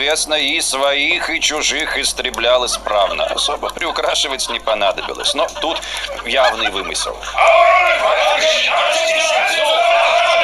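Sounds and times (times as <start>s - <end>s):
speech: 0.0s - 10.4s
laughter: 2.5s - 10.4s
crowd of people shouting and yelling: 7.2s - 10.4s.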